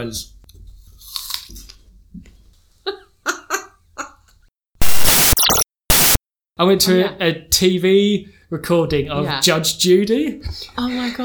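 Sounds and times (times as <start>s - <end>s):
speech: 0.0s - 0.4s, 6.6s - 11.2s
person biting into an apple with crisp crunching: 1.1s - 1.5s
loud bursts of broadband noise: 4.8s - 6.2s.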